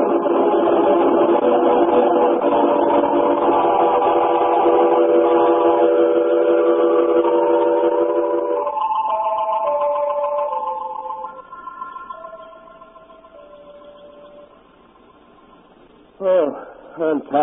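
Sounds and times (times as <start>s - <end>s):
train whistle: 0.0s - 9.2s
rumble of a moving train: 0.0s - 17.4s.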